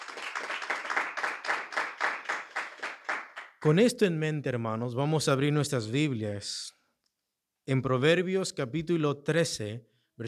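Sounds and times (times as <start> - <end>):
audience clapping in rhythmic unison: 0.0 - 3.9
speech: 3.6 - 6.8, 7.7 - 10.2.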